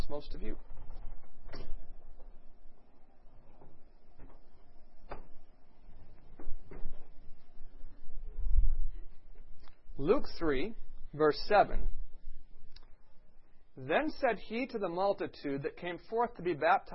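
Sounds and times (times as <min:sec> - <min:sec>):
speech: 0:00.1 - 0:00.8, 0:10.0 - 0:12.0, 0:13.8 - 0:16.9
door being opened with handle and latch: 0:00.6 - 0:02.5, 0:03.3 - 0:07.2.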